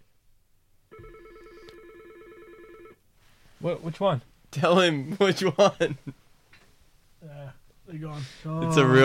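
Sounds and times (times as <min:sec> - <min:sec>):
telephone ringing with incoming call: 0:00.9 - 0:03.0
speech: 0:03.6 - 0:06.2, 0:07.9 - 0:09.0.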